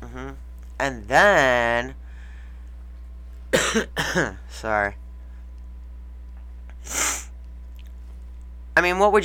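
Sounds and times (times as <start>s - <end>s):
low steady hum: 0.0s - 9.2s
speech: 0.8s - 2.0s, 3.7s - 5.0s, 8.8s - 9.2s
loud sniff against a microphone at a radio station: 6.8s - 7.3s.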